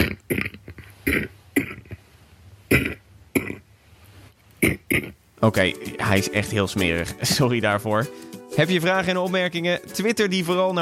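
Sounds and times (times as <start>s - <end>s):
harsh dry coughs: 0.0s - 2.0s, 2.7s - 3.6s
speech: 5.4s - 10.7s.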